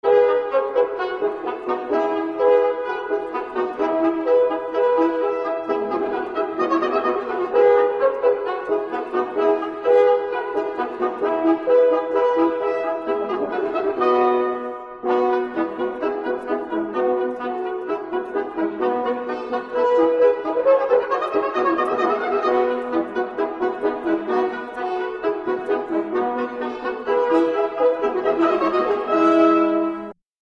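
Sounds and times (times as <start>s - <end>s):
horn playing: 0.0s - 30.2s.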